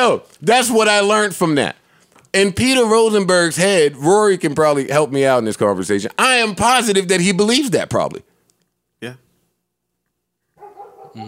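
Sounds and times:
speech: 0:00.0 - 0:08.3, 0:09.0 - 0:09.2
dog barking: 0:10.6 - 0:11.2.

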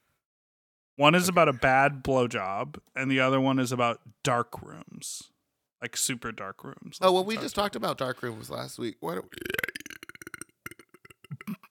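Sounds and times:
speech: 0:01.0 - 0:09.7
loud drawn-out rattling burp: 0:09.2 - 0:11.6.

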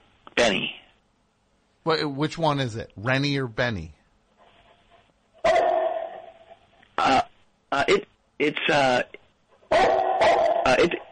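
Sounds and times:
speech: 0:01.8 - 0:04.0, 0:07.8 - 0:10.0, 0:10.7 - 0:11.0
dog barking and yelping: 0:05.4 - 0:06.6, 0:09.7 - 0:10.8.

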